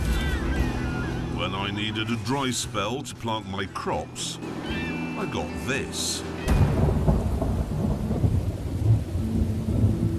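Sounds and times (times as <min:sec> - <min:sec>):
heavy rain pouring: 0:00.0 - 0:10.1
speech: 0:01.5 - 0:06.6
low rumbling thunder: 0:06.5 - 0:10.1.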